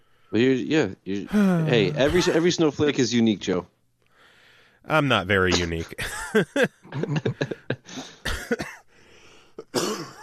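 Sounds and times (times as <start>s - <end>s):
speech: 0.3s - 3.7s, 4.8s - 8.6s
laughter: 1.3s - 2.8s, 5.5s - 8.6s
person coughing in a harsh fit: 1.6s - 2.5s, 7.4s - 8.8s, 9.6s - 10.2s.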